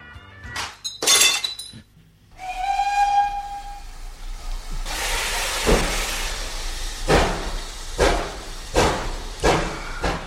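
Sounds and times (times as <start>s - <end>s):
champagne bottle smashing against a locomotive: 0.8s - 1.8s
sustained train whistle: 2.3s - 6.6s
loud bursts of hissing steam: 2.4s - 10.2s.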